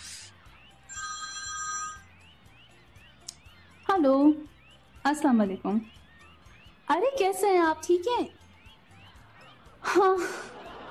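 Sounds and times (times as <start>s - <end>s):
mobile phone ringing with a bright electronic tone: 0.7s - 2.3s
speech: 4.0s - 6.0s, 6.9s - 8.4s, 9.9s - 10.5s
laughter: 9.4s - 10.8s.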